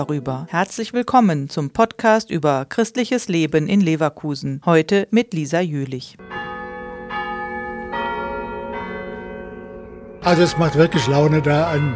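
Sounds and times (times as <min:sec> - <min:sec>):
speech: 0:00.0 - 0:06.4, 0:10.3 - 0:11.9
large church bell ringing: 0:06.2 - 0:11.9.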